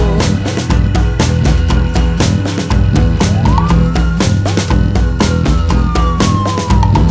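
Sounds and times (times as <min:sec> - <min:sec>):
loud upbeat music with a pounding drum beat: 0:00.0 - 0:07.0
emergency vehicle siren wailing: 0:03.3 - 0:07.0.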